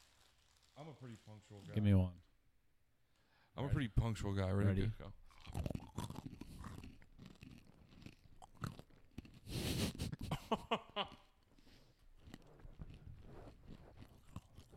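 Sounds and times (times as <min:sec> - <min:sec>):
speech: 0:00.8 - 0:02.3, 0:03.6 - 0:05.8, 0:10.5 - 0:11.2
crunching and chewing praline pecans: 0:05.2 - 0:14.7.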